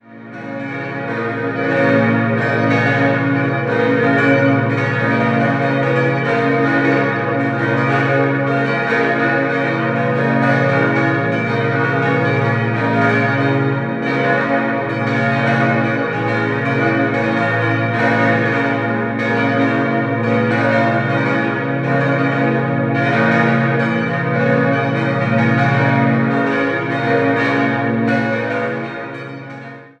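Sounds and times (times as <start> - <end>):
church bells ringing in Rothenburg LU: 0.0 - 29.9.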